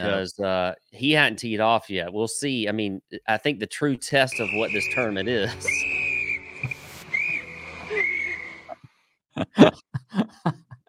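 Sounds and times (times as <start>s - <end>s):
speech: 0.0s - 6.0s, 9.4s - 10.6s
shrill whistle blast: 4.3s - 8.8s
laughter: 4.4s - 5.8s, 9.4s - 10.8s.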